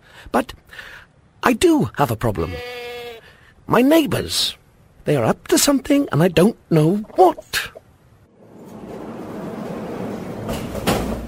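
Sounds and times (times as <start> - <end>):
speech: 0.2 - 2.8, 3.7 - 7.8
doors being flung open with a low rolling rumble: 8.6 - 11.2
doors banging against their stops: 9.6 - 11.2.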